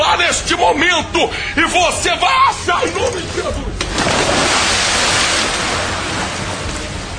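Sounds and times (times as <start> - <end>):
speech: 0.3 - 4.8
sea waves: 3.3 - 7.1.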